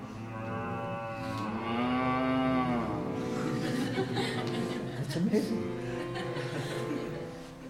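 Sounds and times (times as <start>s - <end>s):
person imitating a cow mooing: 0.2s - 3.2s
laughter: 3.3s - 7.4s
speech: 5.2s - 5.8s.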